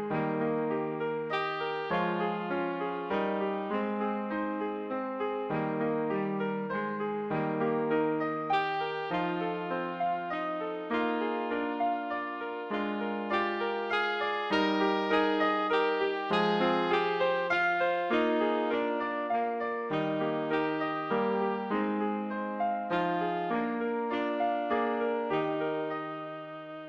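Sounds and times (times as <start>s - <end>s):
tenor saxophone melody: 0.1s - 6.6s, 7.3s - 26.8s.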